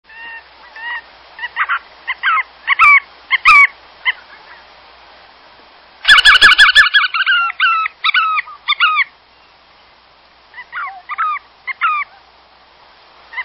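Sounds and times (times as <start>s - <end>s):
Bar tailed Godwit: 0.1s - 4.6s, 6.0s - 9.6s, 10.5s - 12.3s.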